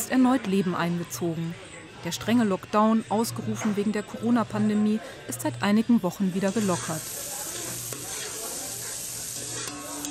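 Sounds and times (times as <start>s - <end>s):
speech: 0.1s - 7.3s
onions and carrots frying on a small gas cylinder stove in a hut: 6.3s - 10.1s
stirring onions and carrots on a small gas cylinder stove: 6.8s - 10.1s.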